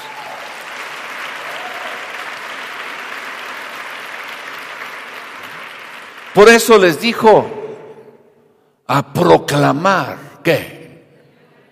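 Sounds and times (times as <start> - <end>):
audience applauding: 0.0 - 7.0
speech: 6.4 - 7.6, 8.9 - 10.8.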